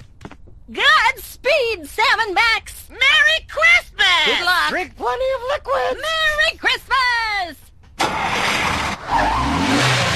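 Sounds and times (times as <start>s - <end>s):
speech: 0.7s - 6.8s
video game car engine roaring as it drives off: 8.0s - 10.1s.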